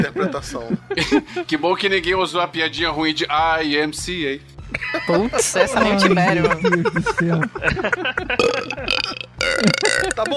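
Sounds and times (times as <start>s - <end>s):
laughter: 0.0s - 1.7s, 4.7s - 10.3s
speech: 0.0s - 10.3s
loud gurgling burp: 8.4s - 10.3s.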